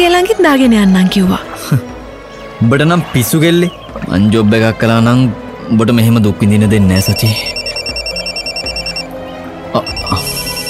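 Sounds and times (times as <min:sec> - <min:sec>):
speech: 0:00.2 - 0:01.9, 0:02.6 - 0:07.6, 0:09.7 - 0:10.2
mobile phone electronic ringtone for an incoming call: 0:06.9 - 0:09.2, 0:09.8 - 0:10.6.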